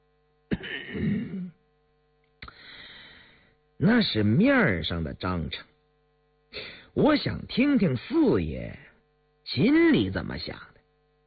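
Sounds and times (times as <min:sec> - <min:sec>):
steady hum: 0:00.0 - 0:11.2
light cough and throat clearing: 0:00.5 - 0:01.6
speech: 0:03.8 - 0:05.7, 0:06.6 - 0:08.9, 0:09.5 - 0:10.7.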